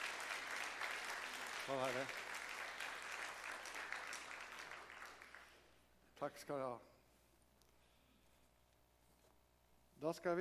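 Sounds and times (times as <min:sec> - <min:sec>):
church audience applauding for a baby: 0:00.0 - 0:05.8
speech: 0:01.7 - 0:02.2, 0:06.2 - 0:06.9, 0:10.0 - 0:10.3.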